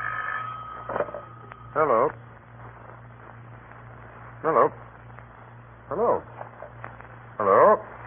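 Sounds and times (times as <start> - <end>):
telephone ringing with an electronic tone: 0.0 - 2.1
low hum: 0.0 - 8.0
speech: 1.8 - 2.2.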